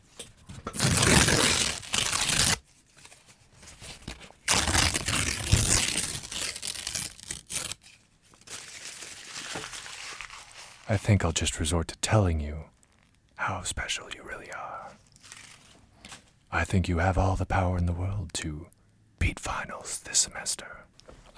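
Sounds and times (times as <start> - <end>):
paper rustling and ripping: 0.6 - 10.9
paper being torn up: 0.7 - 2.6, 4.0 - 7.8
speech: 10.9 - 12.8, 13.5 - 14.7, 16.5 - 18.8, 19.6 - 21.3.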